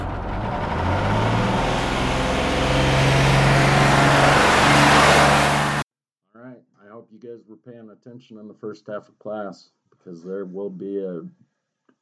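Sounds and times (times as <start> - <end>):
heavy vehicle engine revving as it pulls away: 0.0 - 5.8
speech: 7.9 - 11.4.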